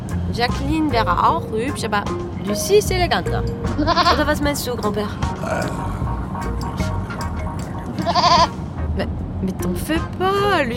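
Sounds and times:
speech: 0:00.4 - 0:06.8, 0:08.0 - 0:10.7
goat bleating: 0:03.8 - 0:04.3, 0:08.0 - 0:08.6.

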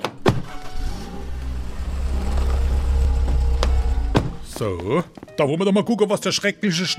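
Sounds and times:
car engine rumbling as car pulls up: 0:00.0 - 0:04.6
speech: 0:04.6 - 0:06.9.

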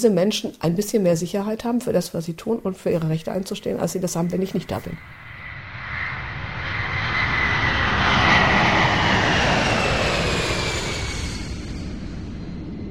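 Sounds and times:
speech: 0:00.0 - 0:05.2
airplane taking off: 0:03.0 - 0:12.8.

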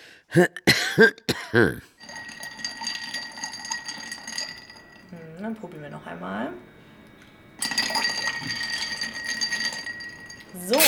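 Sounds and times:
speech: 0:00.3 - 0:01.9, 0:05.4 - 0:06.6, 0:10.5 - 0:10.8
ice clinking in a glass as a drink is poured: 0:02.0 - 0:05.4, 0:07.6 - 0:10.8.

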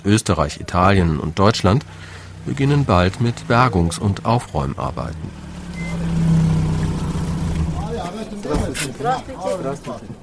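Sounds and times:
speech: 0:00.0 - 0:05.4, 0:08.5 - 0:10.2
truck engine rumbling as it maneuvers to park in a container village: 0:00.0 - 0:10.2
truck reversing alarm beeping: 0:05.7 - 0:06.0.

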